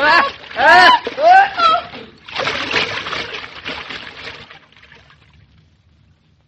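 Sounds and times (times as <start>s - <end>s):
person crying out for help: 0.0s - 2.0s
heavy splash of person falling into scummy pond: 0.0s - 5.4s
churning sloshing pond water: 0.0s - 5.9s.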